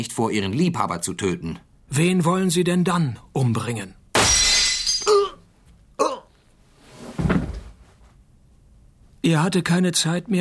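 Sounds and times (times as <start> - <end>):
speech: 0.0 - 4.4, 9.3 - 10.3
shop window pane shattering from a bullet: 4.1 - 5.4.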